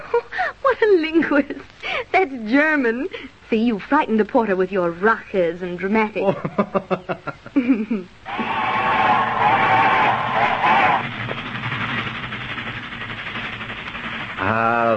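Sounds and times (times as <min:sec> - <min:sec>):
speech: 0:00.1 - 0:08.5
fast-moving train in Italy roaring: 0:08.3 - 0:14.9
short sharp bursts: 0:08.3 - 0:14.9.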